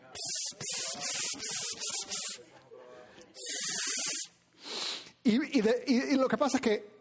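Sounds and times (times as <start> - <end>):
person imitating aerosol spray can hissing with their mouth: 0.1 - 2.4, 3.4 - 5.1
speech: 0.2 - 3.8, 5.2 - 6.9.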